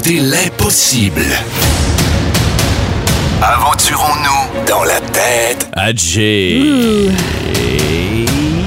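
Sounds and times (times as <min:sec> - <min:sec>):
speech: 0:00.0 - 0:08.5
door creaking open with groaning hinges: 0:07.1 - 0:08.2.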